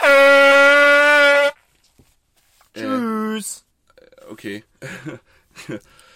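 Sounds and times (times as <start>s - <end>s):
horn blast: 0.0s - 1.6s
speech: 4.4s - 6.1s.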